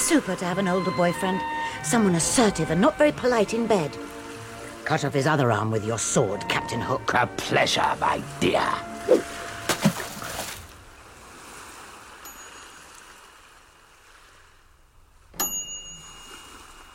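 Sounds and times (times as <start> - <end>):
speech: 0.1 - 4.1, 4.9 - 9.3
oven timer bell ringing: 12.2 - 12.9, 15.4 - 16.9.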